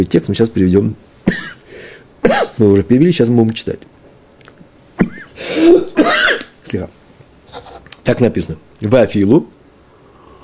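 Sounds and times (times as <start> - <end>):
speech: 0.0 - 1.4, 2.2 - 3.9, 5.6 - 7.0, 8.0 - 9.6
harsh coughing: 1.3 - 1.6, 2.2 - 2.6, 5.0 - 6.6
raspy throat clearing: 1.3 - 1.6, 2.2 - 2.6, 5.0 - 6.5.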